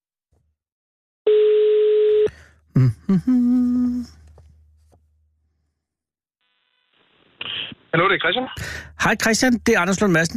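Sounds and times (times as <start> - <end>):
telephone ringing tone of an outgoing call: 1.3 - 2.3
speech: 2.8 - 3.6, 7.9 - 10.3.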